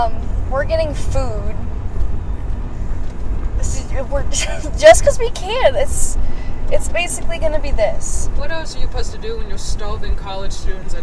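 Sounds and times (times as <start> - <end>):
speech: 0.0 - 1.7, 3.6 - 11.0
road noise inside a moving car: 0.0 - 11.0.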